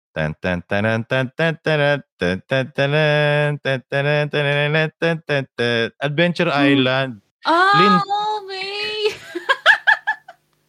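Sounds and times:
person singing a bouncy video game melody with nonsense syllables: 0.2s - 7.0s, 7.6s - 9.0s
speech: 0.2s - 8.6s
laughter: 9.0s - 10.4s.

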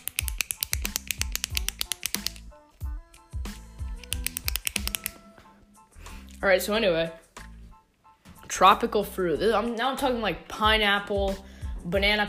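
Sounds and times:
ballpoint pen clicking: 0.0s - 5.2s
speech: 6.4s - 7.2s, 8.6s - 12.2s.

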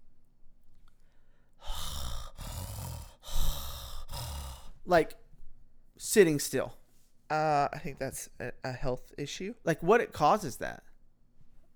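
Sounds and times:
person imitating raspy mouth breathing: 1.0s - 5.0s
speech: 4.9s - 5.2s, 6.0s - 10.9s.

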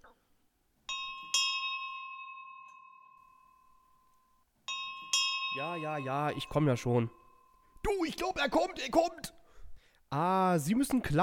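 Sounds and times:
two-tone ding-dong doorbell chime: 0.9s - 7.8s
speech: 5.6s - 7.2s, 7.8s - 9.4s, 10.1s - 11.2s.

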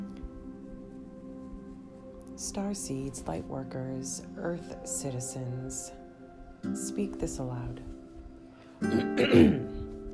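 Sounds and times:
speech: 2.4s - 6.0s, 6.6s - 7.9s, 8.8s - 9.7s
throat clearing: 8.8s - 9.8s.

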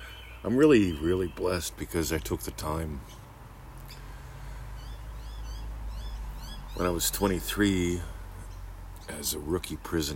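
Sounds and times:
faint birdsong on an early February morning: 0.0s - 10.1s
speech: 0.4s - 3.2s, 6.8s - 8.1s, 9.1s - 10.1s.

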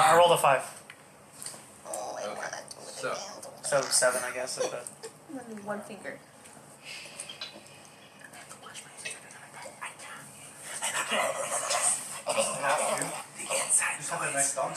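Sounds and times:
speech: 0.2s - 0.8s, 3.0s - 7.0s, 11.1s - 11.6s, 12.3s - 13.2s, 14.0s - 14.7s
dog whimpering: 1.9s - 4.8s.

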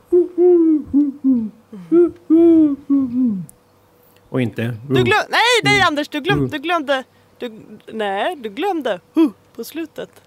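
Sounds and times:
human voice imitating Eurasian collared dove cooing: 0.0s - 3.5s
speech: 4.4s - 10.2s.

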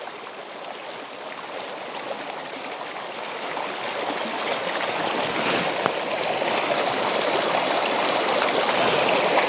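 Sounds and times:
steady continuous rush of flowing water: 0.0s - 9.4s.

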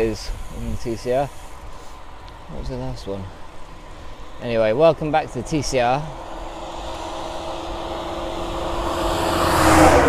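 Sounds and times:
speech: 0.0s - 1.5s, 2.5s - 3.4s, 4.4s - 6.3s
road traffic noise rumbling along a road: 0.0s - 10.0s
passing vehicle: 3.3s - 10.0s.

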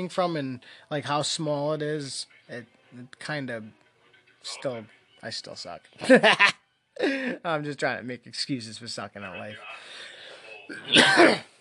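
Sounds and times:
speech: 0.0s - 3.8s, 4.4s - 10.0s, 10.7s - 11.5s
harsh throaty cough: 10.7s - 11.5s.

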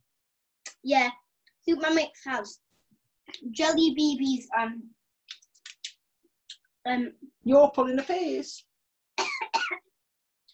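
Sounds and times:
speech: 0.8s - 2.6s, 3.3s - 5.0s, 6.8s - 8.7s
person coughing harshly and breathily: 9.2s - 9.9s.

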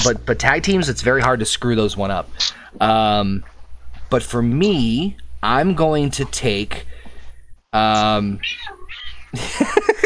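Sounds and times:
speech: 0.0s - 3.5s, 4.1s - 6.9s, 7.7s - 10.0s
annoyed cat meowing while getting a back rub: 8.4s - 9.3s
laughter: 9.4s - 10.0s.

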